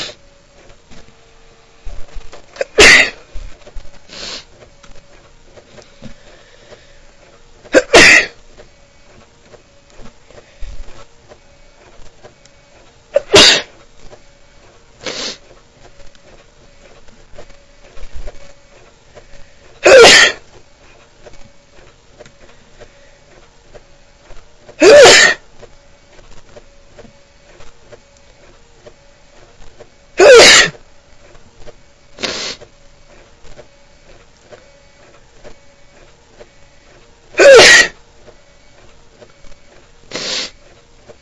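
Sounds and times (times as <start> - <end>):
faint steady mechanical hum: 0.0 - 41.1
repeated sneezing: 2.6 - 3.3, 7.7 - 8.4, 13.1 - 13.8, 15.0 - 15.4, 19.8 - 20.4, 24.8 - 25.4, 30.2 - 30.8, 32.2 - 32.7, 37.4 - 38.0, 40.1 - 40.6.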